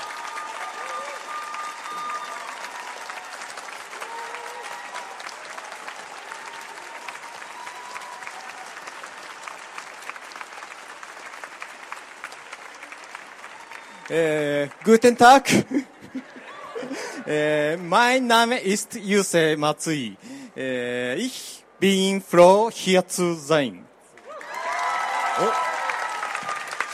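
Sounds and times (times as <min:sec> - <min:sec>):
faint tonal whistles or cheers: 0:00.0 - 0:09.1, 0:13.4 - 0:14.1, 0:24.3 - 0:26.9
audience applause for a visiting manga artist and author: 0:00.0 - 0:18.0, 0:24.2 - 0:26.9
speech: 0:14.1 - 0:15.9, 0:17.3 - 0:23.8.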